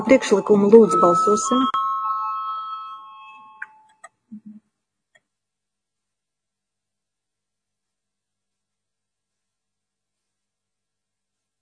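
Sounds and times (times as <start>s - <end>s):
speech: 0.0s - 1.8s
bell rung to call a parliamentary vote: 0.0s - 4.1s.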